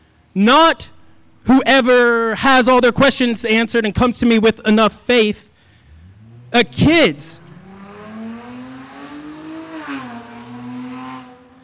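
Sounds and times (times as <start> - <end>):
speech: 0.4 - 5.5, 6.5 - 7.4
car engine revving: 5.7 - 11.6.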